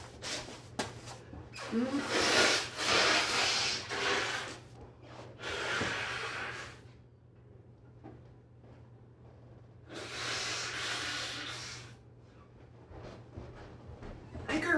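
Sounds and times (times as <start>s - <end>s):
person blowing nose into a tissue: 1.6s - 4.7s, 5.3s - 6.9s, 9.9s - 12.0s.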